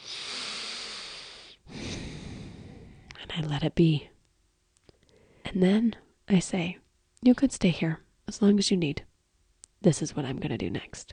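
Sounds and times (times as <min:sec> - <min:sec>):
deep breath: 0:00.0 - 0:03.2, 0:04.9 - 0:05.5
speech: 0:03.4 - 0:04.1, 0:05.5 - 0:09.1, 0:09.8 - 0:11.1.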